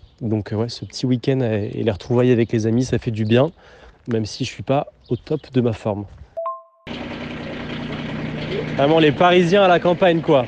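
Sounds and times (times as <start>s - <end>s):
speech: 0.2s - 6.2s, 8.7s - 10.4s
short two-tone beep: 6.4s - 6.9s
tractor engine running in the countryside: 6.9s - 10.4s.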